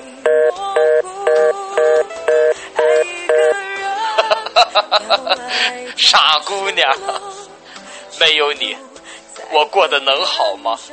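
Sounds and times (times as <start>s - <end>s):
electronic phone tones after a hang-up: 0.2s - 3.6s
speech: 0.3s - 1.1s, 4.9s - 7.4s, 8.2s - 8.9s, 9.5s - 10.9s
short phone beeps: 0.3s - 3.6s
laughter: 4.2s - 5.6s.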